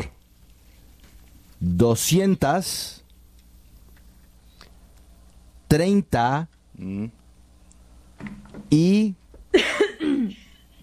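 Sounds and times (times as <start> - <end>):
speech: 1.6 - 3.0, 5.8 - 7.2, 8.2 - 9.7
rough raspy cough: 9.6 - 10.5.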